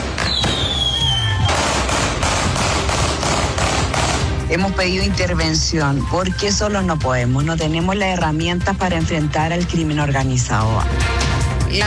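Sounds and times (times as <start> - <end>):
fireworks crackling at a street wake: 0.0 - 4.2
gunfire bursts at a street wake: 0.0 - 4.5
loud bangs outdoors: 0.0 - 4.6
whistling firework rocket rising: 0.1 - 1.6
speech: 4.5 - 11.8.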